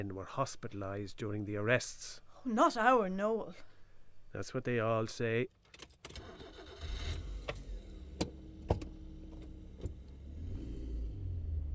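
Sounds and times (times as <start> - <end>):
speech: 0.0 - 3.7, 4.3 - 6.3
clicks and ticks from inside the vehicle: 5.5 - 10.3
car engine humming during a drive from Dublin: 5.5 - 11.7.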